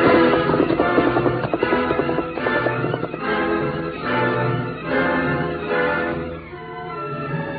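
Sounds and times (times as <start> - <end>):
galloping hoofbeats of a ridden horse: 0.0 - 4.3
loud dramatic music score: 0.0 - 7.5.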